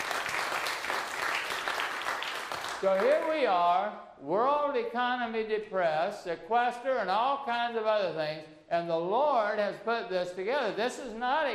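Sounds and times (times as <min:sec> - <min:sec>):
congregation applause during a church service: 0:00.0 - 0:03.5
speech: 0:02.8 - 0:11.5.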